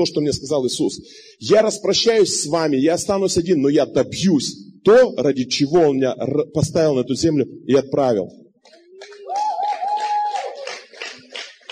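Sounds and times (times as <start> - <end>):
speech: 0.0 - 8.4
rhythmic hand clapping: 8.7 - 11.7.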